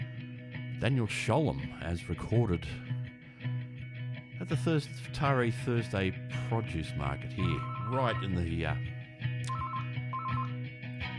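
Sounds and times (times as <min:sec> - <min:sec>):
speech: 0:00.8 - 0:03.0, 0:04.5 - 0:08.9
telephone ringing at an outdoor produce market in a park: 0:07.4 - 0:08.4, 0:09.5 - 0:10.6.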